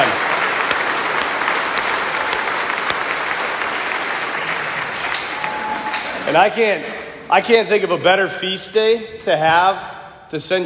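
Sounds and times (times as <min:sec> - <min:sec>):
large audience applauding graduates: 0:00.0 - 0:07.0
speech: 0:06.3 - 0:10.6.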